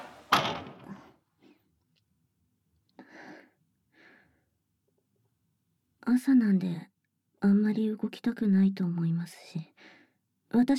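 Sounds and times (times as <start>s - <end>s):
door pushed shut: 0.0s - 1.0s
speech: 6.1s - 10.7s.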